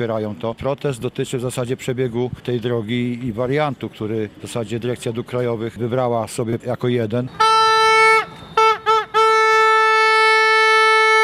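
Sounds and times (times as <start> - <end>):
speech: 0.0 - 7.6
handheld horn blown in protest: 7.3 - 11.2.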